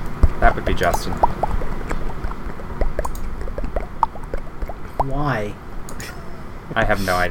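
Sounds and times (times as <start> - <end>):
small bubbly pops and clicks: 0.2 - 5.5
speech: 0.4 - 1.5, 5.0 - 5.6, 6.7 - 7.3
wet lip smacking: 0.7 - 6.2.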